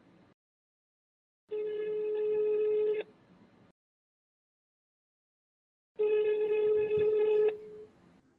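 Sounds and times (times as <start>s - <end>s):
phone call buzzy ringing tone: 1.5s - 3.0s, 6.0s - 7.9s.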